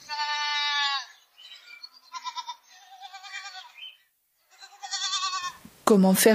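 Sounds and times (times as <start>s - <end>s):
herd of goats bleating: 0.0s - 1.2s, 2.0s - 5.6s
speech: 5.9s - 6.3s.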